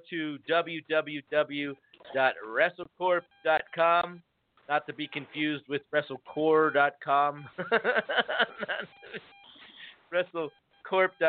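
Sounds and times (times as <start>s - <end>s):
speech: 0.0s - 9.4s, 10.1s - 11.2s
indistinct voices talking over a phone line: 0.0s - 11.2s
short electronic beep on a phone line: 3.1s - 4.2s, 4.8s - 5.6s, 6.3s - 7.8s, 8.5s - 11.2s
laughter: 7.4s - 9.9s.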